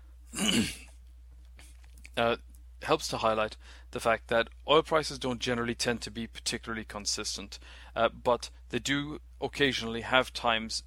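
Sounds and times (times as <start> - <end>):
cough: 0.3 - 0.9
speech: 0.4 - 0.8, 2.2 - 10.8.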